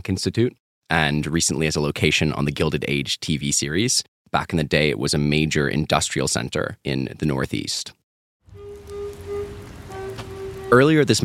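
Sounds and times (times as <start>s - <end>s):
speech: 0.0s - 8.0s, 10.7s - 11.2s
steady rain with scattered drops: 8.5s - 11.2s.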